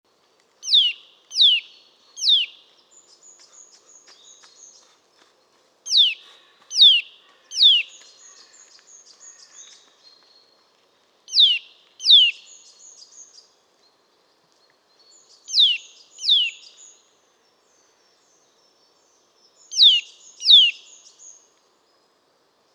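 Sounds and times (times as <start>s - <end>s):
Eurasian nuthatch Sitta europaea repeating sharp downslurred piping calls: 0.6s - 2.6s, 5.9s - 8.0s, 11.3s - 12.4s, 15.5s - 16.8s, 19.7s - 20.8s.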